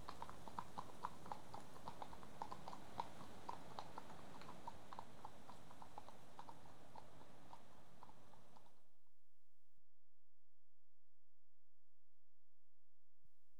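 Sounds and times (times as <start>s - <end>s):
two horses walking on tarmac, hooves clopping: 0.0s - 8.8s.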